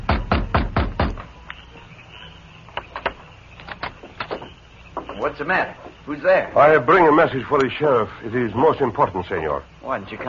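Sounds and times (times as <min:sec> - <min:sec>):
fist pounding on the wooden back door of a sheriff's office: 0:00.0 - 0:01.3
speech: 0:05.2 - 0:10.2.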